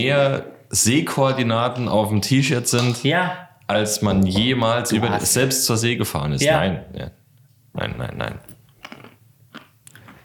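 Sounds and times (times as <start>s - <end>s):
speech: 0.0s - 7.2s, 7.8s - 8.5s
person chewing food with wet smacking and crunching: 8.5s - 10.2s.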